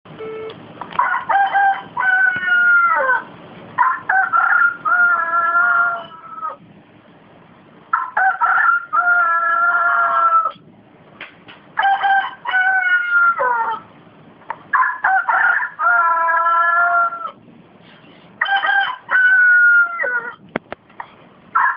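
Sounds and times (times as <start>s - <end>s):
rooster crowing: 1.0s - 6.6s, 7.9s - 10.6s, 11.8s - 13.9s, 14.7s - 17.4s, 18.4s - 20.4s, 21.6s - 21.7s.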